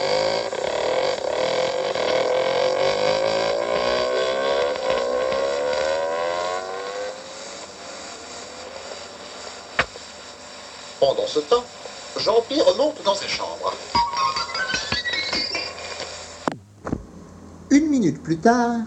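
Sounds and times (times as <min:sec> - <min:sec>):
motorcycle engine revving and accelerating away: 0:00.0 - 0:18.8
speech: 0:11.0 - 0:13.8, 0:18.0 - 0:18.8.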